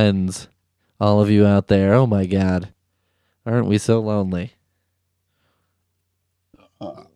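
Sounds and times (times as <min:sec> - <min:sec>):
speech: 0:00.0 - 0:02.8, 0:03.4 - 0:04.6, 0:06.8 - 0:07.1
person belching after drinking beer: 0:06.6 - 0:07.1.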